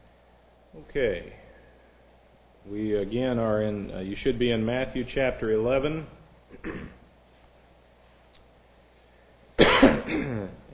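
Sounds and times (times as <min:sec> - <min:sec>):
speech: 0:00.7 - 0:01.4, 0:02.6 - 0:07.0
single short cough from a tightened throat: 0:06.5 - 0:07.0, 0:09.6 - 0:10.7.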